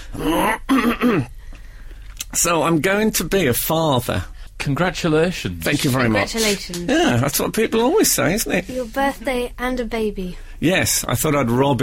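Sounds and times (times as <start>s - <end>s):
voiced throat clearing: 0.0s - 1.4s
speech: 2.4s - 11.8s.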